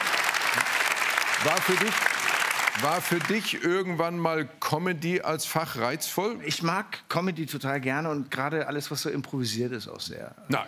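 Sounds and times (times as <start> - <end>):
audience applause: 0.0 - 3.7
speech: 1.4 - 2.1, 2.8 - 10.6.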